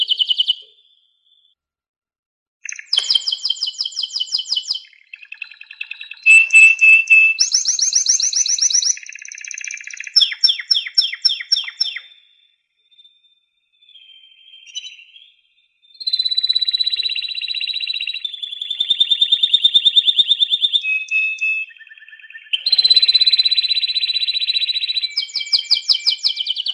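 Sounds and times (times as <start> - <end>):
canary song with descending sweeping notes and rapid buzzy trills: 2.6 - 12.3, 16.0 - 26.7.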